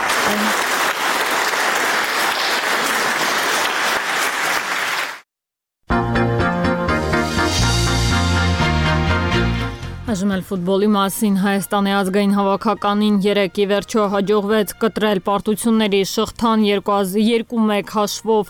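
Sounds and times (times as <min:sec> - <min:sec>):
applause greeting a speech at an event: 0:00.0 - 0:05.3
speech: 0:00.3 - 0:00.7, 0:10.1 - 0:18.4
music: 0:05.9 - 0:15.6.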